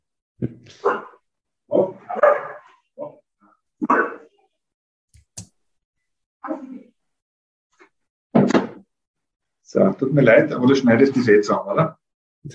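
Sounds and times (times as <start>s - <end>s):
speech: 0.4s - 1.0s, 9.7s - 12.5s
Australian Shepherd dog barking: 0.8s - 1.2s, 2.1s - 2.8s.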